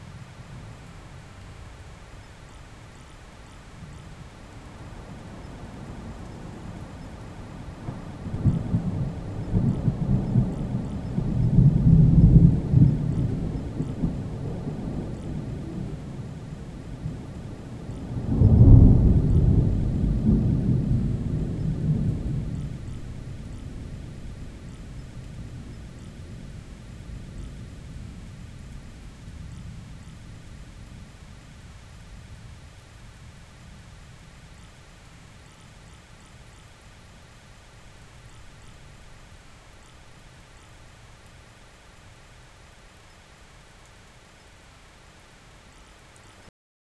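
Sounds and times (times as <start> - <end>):
heavy thunder in an open field: 7.4 - 31.2.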